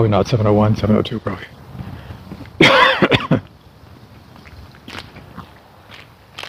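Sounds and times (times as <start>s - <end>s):
speech: 0.0s - 1.6s
person coughing harshly: 2.6s - 3.4s.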